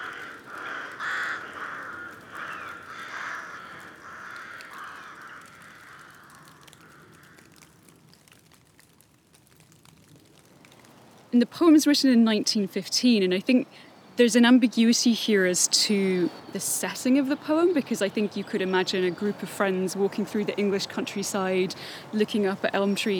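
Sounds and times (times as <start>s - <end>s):
rooks cawing harshly in park woods: 0.0s - 8.0s, 18.0s - 23.1s
rain pattering on the leaves in park woods: 0.0s - 23.1s
speech: 11.4s - 23.1s.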